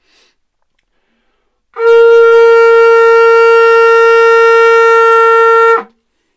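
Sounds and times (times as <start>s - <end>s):
kudu antelope horn blown in a long steady note: 1.7s - 6.0s.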